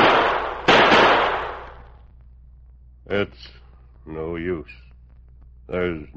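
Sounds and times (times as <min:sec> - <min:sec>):
revolver gunshots fired in the desert: 0:00.0 - 0:01.9
speech: 0:03.1 - 0:04.9, 0:05.7 - 0:06.1.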